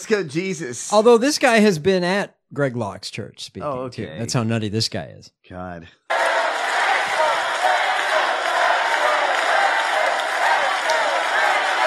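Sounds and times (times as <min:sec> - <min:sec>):
speech: 0:00.0 - 0:06.2
large crowd chanting a slogan: 0:06.1 - 0:11.8.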